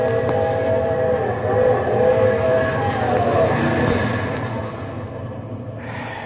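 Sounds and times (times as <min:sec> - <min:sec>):
heavy rumble of the passing train: 0:00.0 - 0:06.2.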